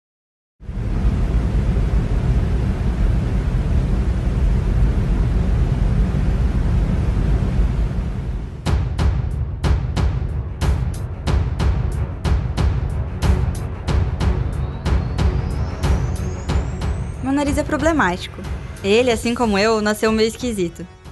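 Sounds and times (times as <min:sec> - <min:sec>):
electric fan running with a loud whooshing hum: 0:00.6 - 0:21.1
speech: 0:17.4 - 0:21.0.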